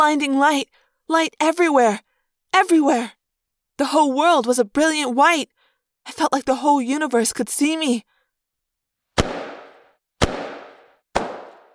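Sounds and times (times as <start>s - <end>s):
speech: 0.0s - 3.2s, 3.8s - 8.1s
sharp cracking explosions in the trees as steel nets are fired: 9.2s - 11.7s.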